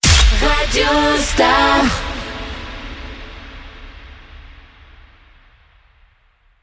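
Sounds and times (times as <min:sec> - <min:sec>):
female sung radio ident sweep: 0:00.0 - 0:02.9.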